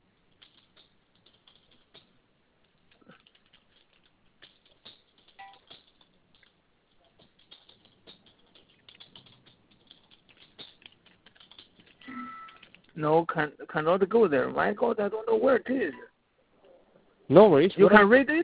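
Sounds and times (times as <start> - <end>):
typing on a computer keyboard: 0.3 - 13.0
speech: 13.0 - 16.1, 17.3 - 18.4.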